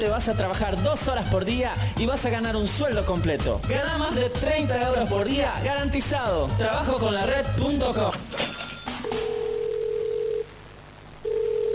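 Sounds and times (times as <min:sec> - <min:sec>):
speech: 0:00.0 - 0:08.6
electronic telephone tone: 0:09.0 - 0:10.5, 0:11.2 - 0:11.7.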